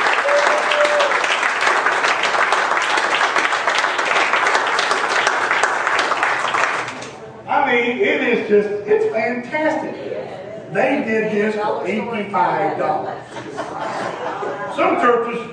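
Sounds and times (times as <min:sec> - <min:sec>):
church audience applause: 0:00.0 - 0:07.2
speech: 0:08.5 - 0:10.0, 0:10.7 - 0:13.3, 0:14.8 - 0:15.5
laughter: 0:13.1 - 0:15.0.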